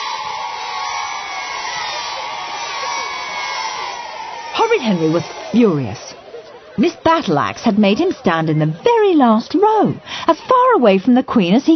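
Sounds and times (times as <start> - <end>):
crowd of schoolchildren cheering and shrieking in a school playground: 0.0 - 6.8
speech: 4.7 - 6.1, 6.8 - 11.7.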